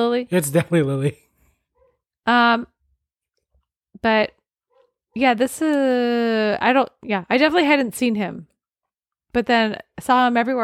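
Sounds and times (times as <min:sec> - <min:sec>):
speech: 0:00.0 - 0:01.2, 0:02.3 - 0:02.7, 0:04.0 - 0:04.4, 0:05.2 - 0:08.5, 0:09.3 - 0:10.6
dog barking: 0:01.7 - 0:02.0.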